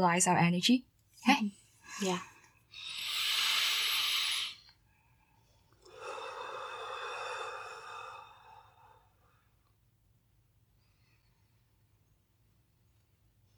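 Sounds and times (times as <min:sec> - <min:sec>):
speech: 0:00.0 - 0:03.0
group taking deep breaths together during a workshop: 0:01.8 - 0:09.3.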